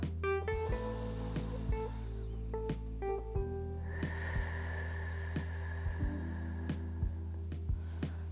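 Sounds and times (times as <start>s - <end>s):
steady low humming drone: 0.0s - 8.3s
slow deep breath in and out with long hissing exhale: 0.6s - 2.4s, 3.8s - 8.3s.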